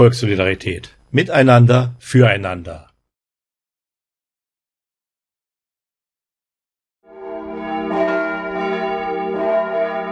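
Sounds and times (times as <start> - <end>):
speech: 0.0 - 2.9
church bells ringing in a sustained peal: 7.1 - 10.1.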